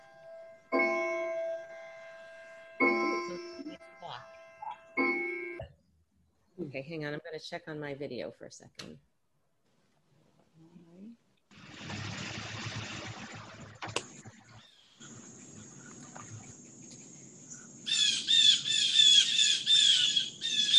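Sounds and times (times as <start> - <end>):
steady noise: 0.0 - 20.7
speech: 6.7 - 9.1
loud harsh bird squawks: 14.6 - 20.7.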